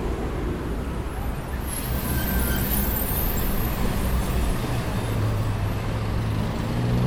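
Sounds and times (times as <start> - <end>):
buses and other heavy vehicles rumbling through an intersection: 0.0 - 7.0
dense steady street traffic roar at a city intersection: 0.0 - 7.0.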